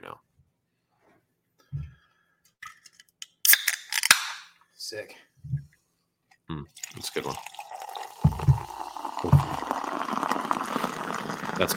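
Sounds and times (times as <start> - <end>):
speech: 4.9 - 5.6, 6.5 - 7.5, 11.6 - 11.7
liquid glugging and splashing into a glass: 6.7 - 11.7.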